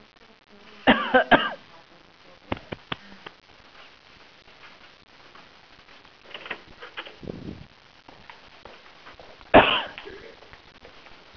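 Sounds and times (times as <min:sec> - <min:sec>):
person coughing: 0:00.9 - 0:01.6, 0:09.6 - 0:10.3
breathing: 0:02.9 - 0:03.3
throat clearing: 0:09.6 - 0:10.2.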